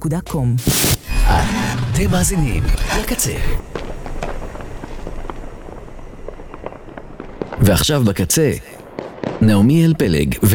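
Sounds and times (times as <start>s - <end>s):
speech: 0.0s - 3.8s, 7.6s - 8.7s, 9.4s - 10.5s
fireworks crackling and popping: 0.6s - 1.5s, 3.7s - 9.7s.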